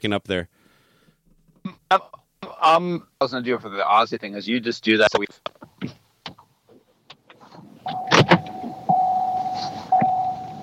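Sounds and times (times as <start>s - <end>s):
speech: 0.0s - 0.6s, 1.6s - 6.0s
car electronic warning tone: 7.8s - 10.6s.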